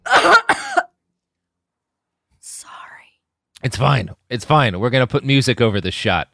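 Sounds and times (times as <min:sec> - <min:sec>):
person coughing: 0:00.0 - 0:00.9
speech: 0:00.2 - 0:00.6, 0:03.6 - 0:06.3.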